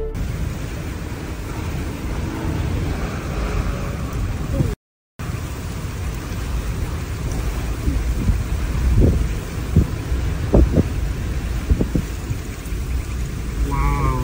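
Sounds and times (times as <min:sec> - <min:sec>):
deep rumbling gusts: 0:00.2 - 0:14.2
heavy rain downpour from a rain bomb: 0:00.2 - 0:14.2.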